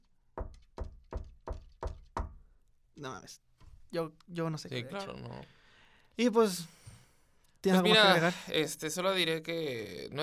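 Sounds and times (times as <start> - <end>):
firm knocking on a door: 0.4 - 2.4
speech: 3.0 - 5.6, 6.2 - 6.8, 7.6 - 10.2.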